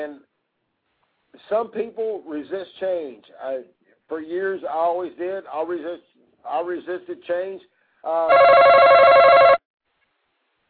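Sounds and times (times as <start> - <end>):
speech: 0.0 - 0.3, 1.3 - 9.6
telephone ringing with an incoming call: 8.3 - 9.6.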